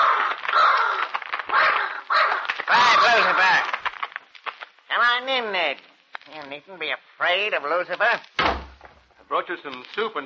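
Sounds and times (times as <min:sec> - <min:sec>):
huge black raven cawing and croaking: 0:00.0 - 0:03.8
huge black raven flapping its wings on the head of a bed: 0:00.0 - 0:04.9
speech: 0:05.3 - 0:08.4, 0:09.3 - 0:10.2.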